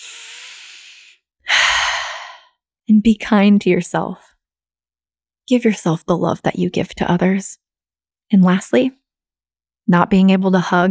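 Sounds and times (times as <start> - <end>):
person breathing deeply: 0.0 - 2.5
speech: 2.9 - 4.3, 5.5 - 7.6, 8.3 - 9.0, 9.9 - 10.8.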